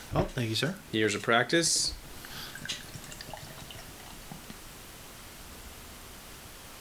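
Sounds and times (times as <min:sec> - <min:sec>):
speech: 0:00.1 - 0:02.0
imperial stout with vanilla pouring from a can into a glass: 0:01.0 - 0:04.7.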